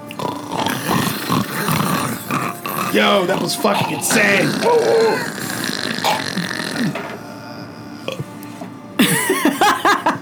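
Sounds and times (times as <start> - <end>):
loud drawn-out burping: 0.0 - 10.1
speech: 2.9 - 5.4
bursts of laughter: 9.0 - 10.2.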